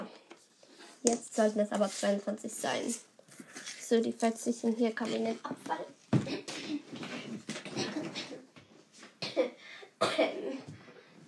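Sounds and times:
speech: 1.0 - 3.1, 3.9 - 6.0
person coughing in a coughing fit: 7.6 - 8.5, 9.2 - 10.8.

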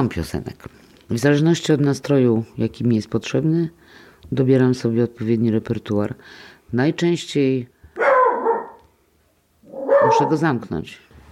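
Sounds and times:
speech: 0.0 - 7.7, 10.1 - 11.1
dog barking: 8.0 - 8.8, 9.7 - 10.4.

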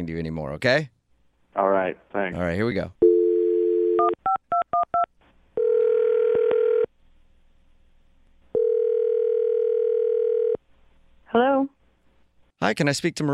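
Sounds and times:
speech: 0.0 - 1.0, 1.6 - 3.0, 11.3 - 11.8, 12.6 - 13.3
telephone dial tone: 3.0 - 4.8, 5.6 - 6.9, 8.6 - 10.6.

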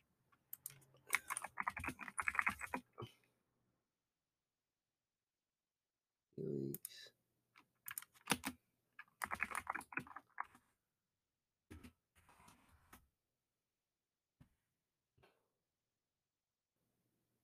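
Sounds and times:
typing on a computer keyboard: 0.6 - 2.8, 7.9 - 10.6.

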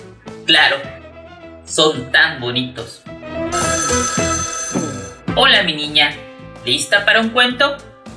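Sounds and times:
speech: 0.5 - 1.0, 1.7 - 3.1, 5.4 - 7.9
telephone ringing with bright metallic bell tone: 3.5 - 5.3.

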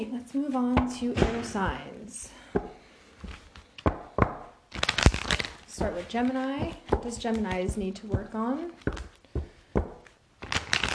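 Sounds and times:
speech: 0.0 - 3.4, 5.8 - 9.1
tarot cards shuffling: 3.2 - 10.9.

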